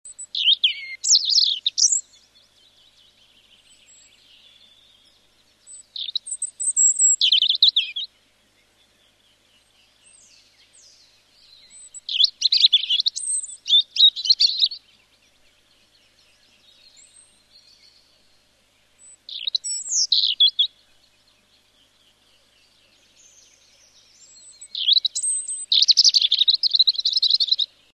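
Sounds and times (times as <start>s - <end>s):
European robin singing: 0.0s - 27.9s.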